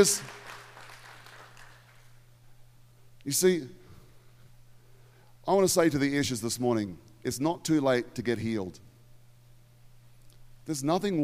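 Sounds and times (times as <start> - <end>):
speech: 0.0 - 0.4, 3.2 - 3.8, 5.5 - 8.9, 10.7 - 11.2
crowd applauding: 0.0 - 2.1
low electrical hum: 0.0 - 11.2.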